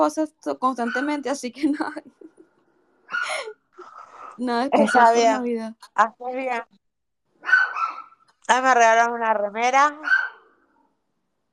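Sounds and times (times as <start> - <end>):
speech: 0.0 - 2.3, 4.4 - 6.8, 8.5 - 10.2
dog barking while fighting with something: 7.4 - 8.2, 10.0 - 10.5.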